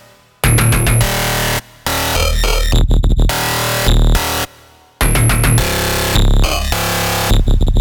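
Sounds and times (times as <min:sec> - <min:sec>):
bass loop in D sharp minor: 0:00.4 - 0:04.2, 0:05.0 - 0:07.8.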